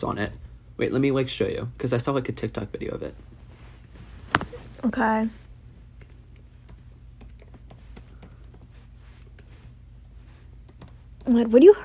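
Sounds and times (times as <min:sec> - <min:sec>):
speech: 0:00.0 - 0:03.3, 0:04.8 - 0:05.4, 0:11.3 - 0:11.8
keyboard typing with quick plastic key clicks: 0:06.0 - 0:09.5, 0:10.6 - 0:11.3.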